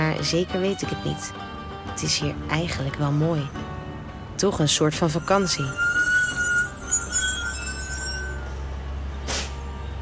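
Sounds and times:
bus engine rumbling low: 0:00.0 - 0:09.9
speech: 0:00.2 - 0:03.7, 0:04.4 - 0:05.9
high bus brake whine: 0:03.4 - 0:09.9
sharp hiss of bus air brakes: 0:05.6 - 0:09.7.

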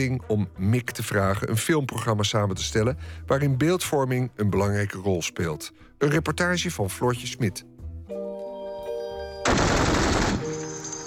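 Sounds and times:
speech: 0:00.0 - 0:08.2
loud dense burst of rapid gunfire: 0:09.5 - 0:10.5.

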